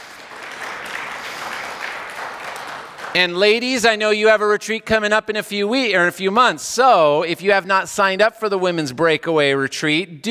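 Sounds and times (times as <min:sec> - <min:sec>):
audience applause: 0:00.0 - 0:03.6
speech: 0:03.1 - 0:10.3.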